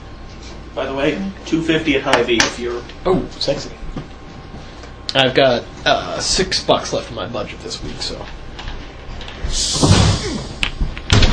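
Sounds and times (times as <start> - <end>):
speech: 0.8 - 4.1, 5.2 - 8.4, 9.5 - 10.5
door closing with a heavy thud: 9.6 - 11.3.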